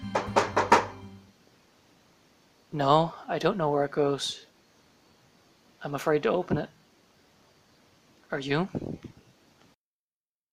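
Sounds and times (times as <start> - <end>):
hand knocking on a door: 0.0 - 1.0
speech: 2.7 - 4.5, 5.8 - 6.8, 8.3 - 9.0.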